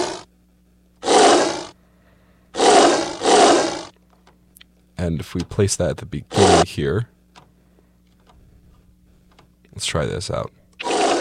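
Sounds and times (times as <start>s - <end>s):
lion roaring: 0.0s - 0.2s, 1.0s - 1.8s, 2.6s - 3.9s, 6.3s - 6.7s, 10.8s - 11.2s
speech: 5.0s - 7.2s, 9.8s - 10.6s.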